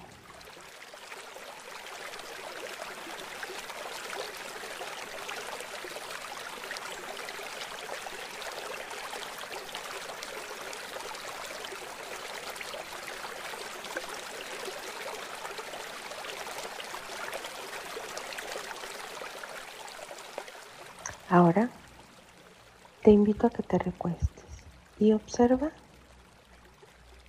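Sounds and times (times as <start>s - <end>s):
flowing river water: 0.0s - 27.2s
speech: 21.3s - 21.8s, 23.0s - 24.4s, 25.0s - 25.8s.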